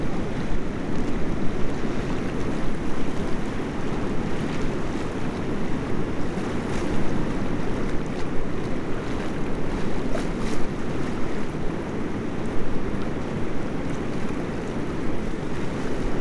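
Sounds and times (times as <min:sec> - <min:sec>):
water rushing under a bridge: 0:00.0 - 0:16.2.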